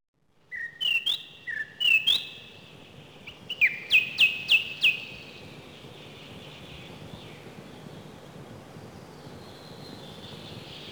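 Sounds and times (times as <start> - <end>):
song thrush singing whistled phrases: 0.5 - 2.4, 3.5 - 5.1.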